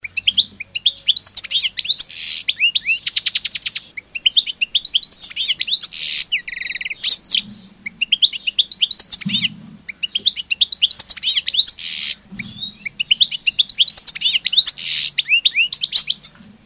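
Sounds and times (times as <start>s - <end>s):
bird chirping and twittering: 0.0s - 16.6s
harsh bird call burst: 0.7s - 7.4s, 10.6s - 13.5s, 14.1s - 16.1s.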